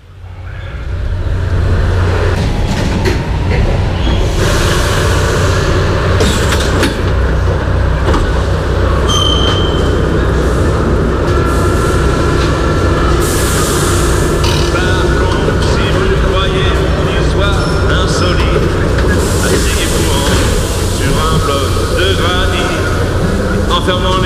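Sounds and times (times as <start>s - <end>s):
clattering rail noise: 0.0s - 24.2s
metro train rumbling: 0.0s - 24.2s
metallic squeals of wheels on track: 9.0s - 10.0s.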